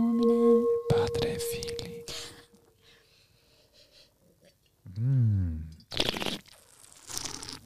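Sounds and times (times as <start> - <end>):
person humming: 0.0 - 2.6, 4.9 - 5.7
person slurping wine to aerate it: 5.9 - 7.6.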